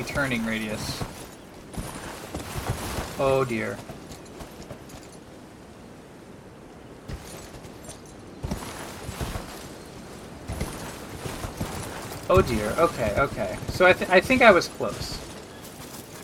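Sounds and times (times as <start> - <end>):
horse hooves clip-clopping as a horse balances high up: 0.0 - 5.3, 7.1 - 16.2
speech: 0.1 - 1.2, 3.2 - 3.9, 12.3 - 15.2.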